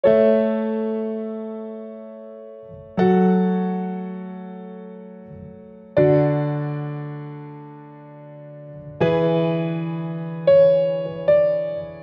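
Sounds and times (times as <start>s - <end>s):
solo piano: 0.0s - 12.0s.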